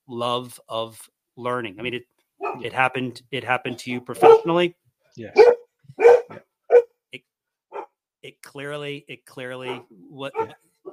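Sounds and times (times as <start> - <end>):
speech: 0.1 - 6.5, 8.2 - 10.7
dogs yelping: 2.4 - 2.6, 4.2 - 4.6, 5.3 - 6.9, 7.7 - 8.0, 9.7 - 10.9
dogs barking: 2.4 - 2.7, 3.7 - 4.6, 5.3 - 6.9, 7.7 - 8.0, 9.6 - 10.9.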